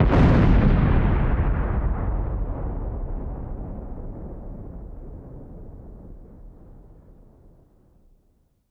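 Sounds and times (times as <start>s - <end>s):
deep weapon explosion: 0.0s - 7.2s.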